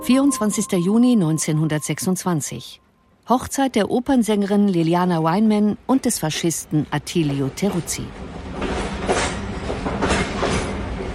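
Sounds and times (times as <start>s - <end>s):
speech: 0.0s - 8.5s
train rattling along the tracks at night: 7.2s - 11.1s
train wheels clacking rhythmically: 8.6s - 10.9s.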